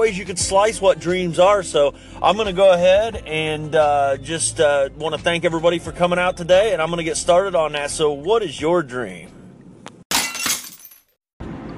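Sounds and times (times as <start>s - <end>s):
speech: 0.0s - 9.4s
glass shattering: 10.1s - 11.2s.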